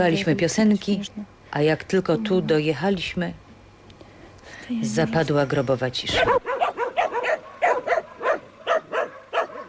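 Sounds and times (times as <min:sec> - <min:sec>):
speech: 0:00.0 - 0:03.4, 0:04.7 - 0:06.5
dog barking in sharp yelps: 0:06.2 - 0:09.6.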